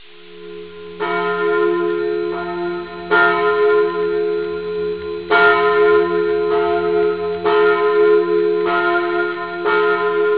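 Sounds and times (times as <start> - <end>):
parish church bell ringing: 0.0 - 10.3.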